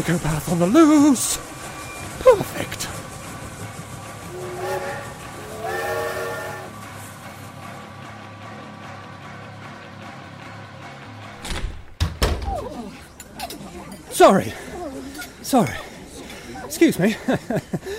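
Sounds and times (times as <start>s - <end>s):
speech: 0.0s - 1.6s, 2.2s - 3.0s, 14.2s - 14.7s, 15.5s - 15.8s, 16.8s - 17.9s
moving train rumbling: 0.0s - 17.9s
tonal whines: 1.4s - 6.9s
laughter: 12.6s - 17.9s.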